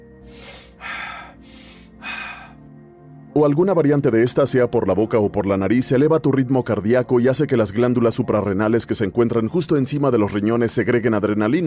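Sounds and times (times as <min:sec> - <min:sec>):
rapid deep repetitive breathing demonstration: 0:00.2 - 0:02.7
speech: 0:03.4 - 0:11.6.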